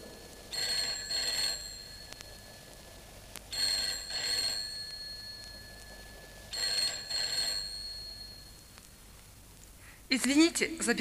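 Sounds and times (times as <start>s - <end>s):
telephone ringing: 0.5s - 8.8s
speech: 10.1s - 10.9s.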